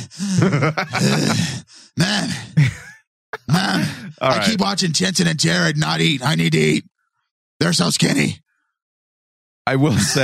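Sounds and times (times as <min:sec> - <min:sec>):
speech: 0:00.0 - 0:02.5, 0:04.1 - 0:06.9, 0:07.6 - 0:08.4, 0:09.6 - 0:10.2
heavy breathing: 0:00.0 - 0:02.6, 0:03.6 - 0:04.5
person groaning in strained bursts: 0:00.0 - 0:02.6, 0:03.4 - 0:04.6
laughter: 0:00.0 - 0:04.6, 0:09.8 - 0:10.2.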